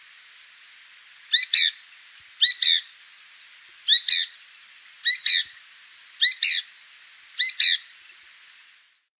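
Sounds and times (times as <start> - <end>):
bird chirping: 1.0 - 2.9, 3.8 - 5.6, 6.2 - 8.1.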